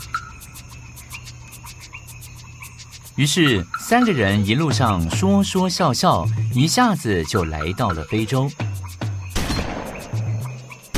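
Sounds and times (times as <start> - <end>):
speech: 3.2 - 9.0
sudden gunfire from woods: 9.3 - 10.3.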